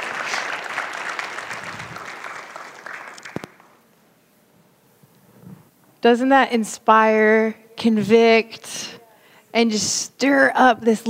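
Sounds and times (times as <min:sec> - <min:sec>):
audience applause: 0:00.0 - 0:03.8
speech: 0:06.0 - 0:11.0.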